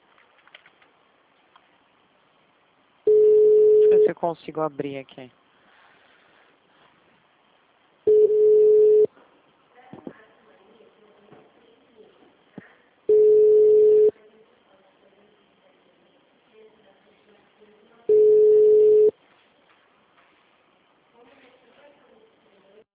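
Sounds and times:
faint sounds: 0.0s - 22.9s
telephone busy tone after a dropped call: 3.1s - 4.1s, 8.1s - 9.1s, 13.1s - 14.1s, 18.1s - 19.2s
speech: 4.1s - 5.4s.

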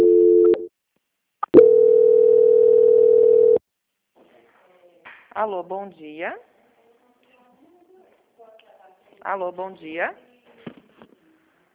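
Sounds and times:
steady low telephone line tone during a call transfer: 0.0s - 0.7s, 1.6s - 3.6s
speech: 5.4s - 6.5s, 9.2s - 10.2s.

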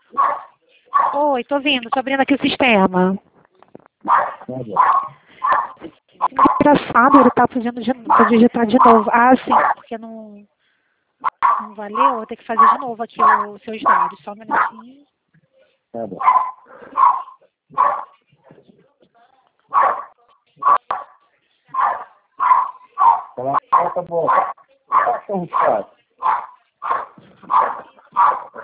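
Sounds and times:
several chihuahuas barking and yipping high-pitched: 0.1s - 1.2s, 4.0s - 9.9s, 11.2s - 14.9s, 16.2s - 18.2s, 19.7s - 28.6s
speech: 1.1s - 3.3s, 4.0s - 5.6s, 6.3s - 10.5s, 11.4s - 15.1s, 15.9s - 18.1s, 23.0s - 28.6s.

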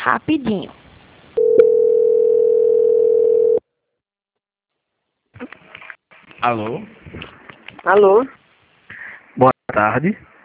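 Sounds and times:
speech: 0.0s - 0.8s, 6.4s - 8.4s, 9.4s - 10.3s
telephone line tone while a call is transferred: 1.4s - 3.6s.

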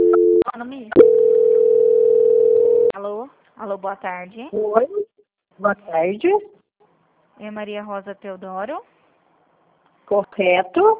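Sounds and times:
speech: 0.5s - 1.2s, 3.7s - 5.0s, 5.6s - 6.5s, 7.4s - 8.9s, 10.1s - 10.9s
telephone call-transfer tones: 1.0s - 2.9s.

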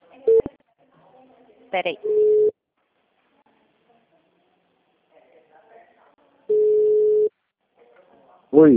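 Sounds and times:
speech: 1.7s - 2.5s, 8.6s - 8.7s
telephone busy tone beep after a dropped call: 2.1s - 2.5s, 6.5s - 7.3s.

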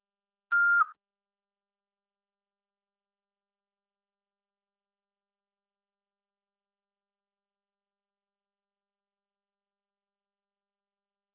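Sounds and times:
voicemail beep tone: 0.5s - 0.9s.

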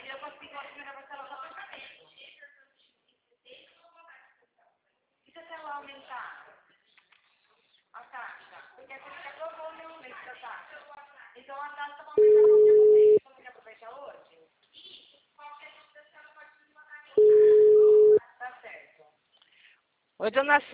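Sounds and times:
telephone busy tone after a dropped call: 12.2s - 13.2s, 17.2s - 18.2s
speech: 20.2s - 20.7s.

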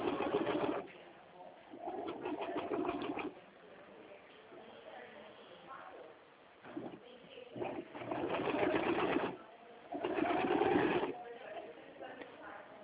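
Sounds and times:
sewing machine running over a phone line: 0.0s - 0.9s, 1.7s - 3.3s, 6.7s - 7.0s, 7.6s - 11.2s.

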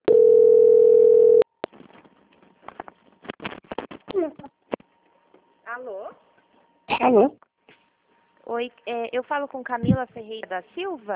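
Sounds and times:
telephone call-transfer tone on a phone line: 0.0s - 1.5s
faint hum: 0.1s - 11.1s
speech: 5.8s - 6.3s, 7.0s - 7.4s, 8.5s - 11.1s.

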